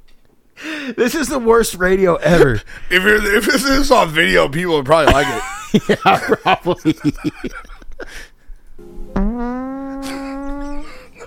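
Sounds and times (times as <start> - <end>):
speech: 0.9 - 8.3
laughter: 5.1 - 8.1, 10.0 - 11.2
loud buzzy fart: 9.2 - 11.1.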